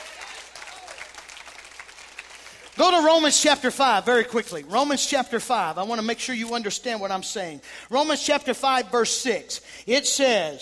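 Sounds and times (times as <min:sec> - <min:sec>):
church congregation clapping hands in praise during a sermon: 0:00.0 - 0:04.6
speech: 0:02.8 - 0:10.5.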